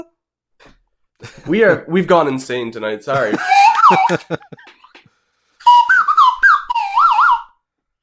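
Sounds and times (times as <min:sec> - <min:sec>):
laughter: 0:01.2 - 0:01.8, 0:03.1 - 0:04.8
speech: 0:01.5 - 0:04.8
slide whistle: 0:03.4 - 0:04.4, 0:05.6 - 0:07.6.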